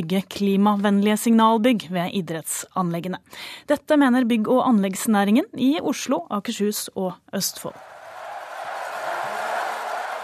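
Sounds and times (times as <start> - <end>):
speech: 0.0 - 7.9
large outdoor crowd cheering along a biathlon course: 7.7 - 10.2.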